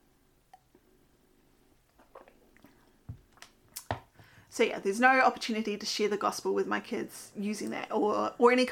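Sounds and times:
person sipping a drink and swallowing: 1.8 - 3.9
speech: 4.5 - 8.6.

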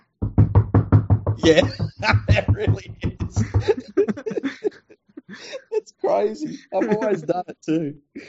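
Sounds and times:
hard tapping on an iPad touchscreen: 0.2 - 4.2
laughter: 1.4 - 7.5
speech: 1.4 - 8.2.

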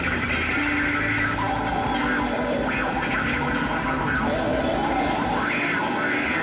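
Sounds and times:
snarling wah-wah pedal guitar: 0.0 - 6.4.

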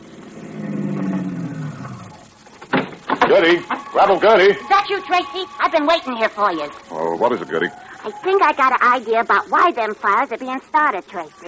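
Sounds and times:
car engine winding down as the vehicle slows to a halt: 0.0 - 2.5
speech: 3.3 - 11.4.

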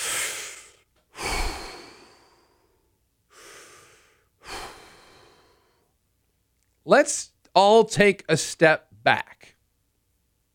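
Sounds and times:
deep slow airy breaths: 0.0 - 6.0
speech: 6.9 - 9.6.

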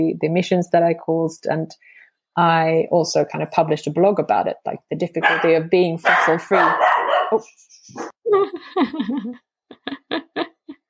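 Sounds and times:
speech: 0.0 - 10.5
dog barking: 5.2 - 7.4
laughter: 7.7 - 10.8.

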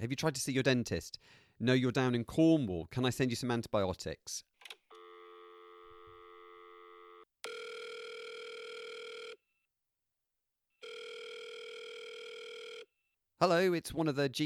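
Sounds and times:
speech: 0.0 - 4.5, 13.4 - 14.4
foreign telephone electronic ringing tone: 4.9 - 9.5, 10.8 - 12.9.

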